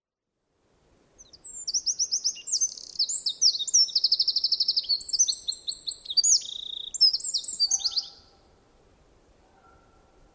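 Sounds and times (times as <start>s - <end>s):
Eurasian wren Troglodytes troglodytes song of sharp chirps and ringing trills: 1.2s - 8.4s.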